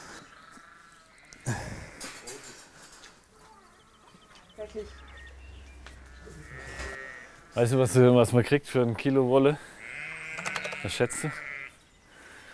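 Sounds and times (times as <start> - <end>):
faint birds chirping on a farm: 0.0 - 12.5
speech: 4.7 - 5.1, 7.6 - 9.7, 10.8 - 11.4
sheep bleating: 6.1 - 7.6, 9.8 - 11.8.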